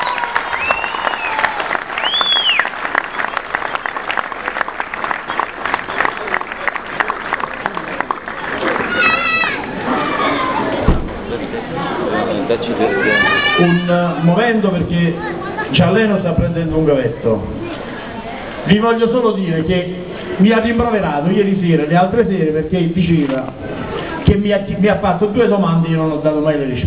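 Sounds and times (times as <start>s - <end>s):
crowd applauding: 0.0s - 11.8s
shouts of cheering: 0.0s - 14.4s
scattered whistles: 0.5s - 3.4s
speech: 14.0s - 17.6s, 18.7s - 23.7s, 24.3s - 26.8s.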